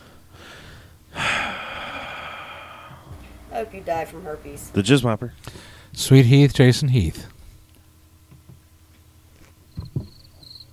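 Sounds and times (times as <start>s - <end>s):
soft low thumps: 2.9s - 4.8s
speech: 3.6s - 7.4s
thin high-pitched cricket chirps: 9.7s - 10.7s.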